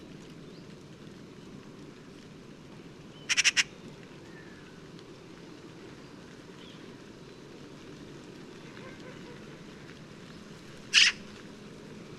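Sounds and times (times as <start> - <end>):
low rumbling background noise: 0.0 - 12.1
Eurasian magpie Pica pica harsh rattling chatter: 3.3 - 3.7, 10.9 - 11.2.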